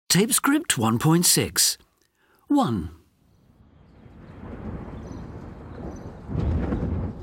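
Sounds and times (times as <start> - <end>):
speech: 0.1 - 1.9, 2.5 - 3.0
deep rolling rumble of thunder: 3.4 - 7.2.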